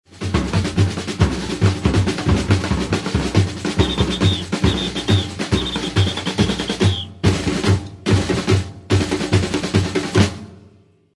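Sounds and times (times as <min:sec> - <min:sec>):
batucada drumming: 0:00.1 - 0:10.5
whistle for quick end of batucada: 0:03.7 - 0:07.3.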